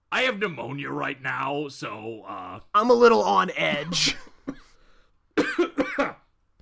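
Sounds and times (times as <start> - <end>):
speech: 0.2 - 4.6, 6.0 - 6.2
fit of raspy coughs brought on by a gravelly character voice: 3.9 - 4.8, 5.4 - 6.3
faint breath: 4.6 - 5.2.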